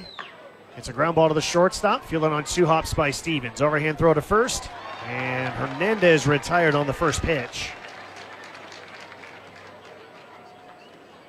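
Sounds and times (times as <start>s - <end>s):
continuous low crowd murmur: 0.0s - 11.2s
speech: 0.8s - 7.8s
baseball fans applauding behind the visiting dugout: 4.7s - 11.2s.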